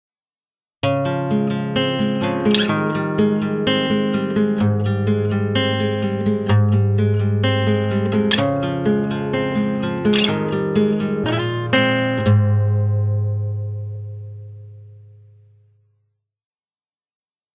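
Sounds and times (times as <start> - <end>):
classical guitar: 0.8 - 15.8.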